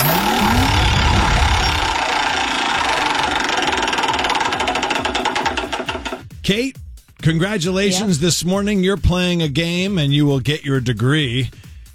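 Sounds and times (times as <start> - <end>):
rising whoosh: 0.0 - 3.0
prize wheel clicker rattling in a ticket-giveaway game: 0.0 - 6.3
speech: 6.5 - 11.6.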